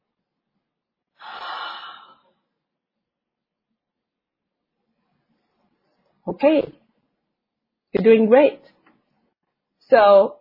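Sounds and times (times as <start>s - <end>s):
deep breath in: 1.2s - 2.4s
speech: 6.3s - 6.8s, 7.9s - 8.7s, 9.9s - 10.3s.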